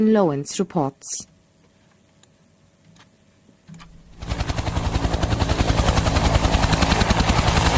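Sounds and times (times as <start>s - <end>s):
speech: 0.0s - 1.3s
military helicopter rotor chopping overhead: 4.0s - 7.7s.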